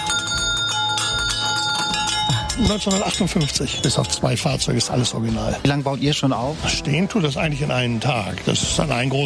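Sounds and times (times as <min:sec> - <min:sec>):
1950s fire engine bell ringing on a carousel: 0:00.0 - 0:04.7
faint fairground bustle: 0:00.0 - 0:09.2
speech: 0:02.6 - 0:09.2.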